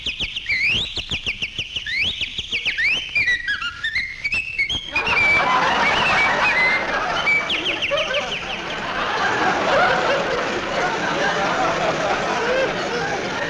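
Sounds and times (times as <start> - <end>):
birds singing in trees in springtime in Southern California: 0.0 - 8.9
laughter: 4.9 - 13.4.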